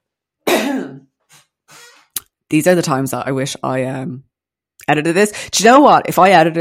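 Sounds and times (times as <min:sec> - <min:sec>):
loud cough: 0:00.5 - 0:01.1
speech: 0:02.5 - 0:04.3, 0:04.9 - 0:06.5.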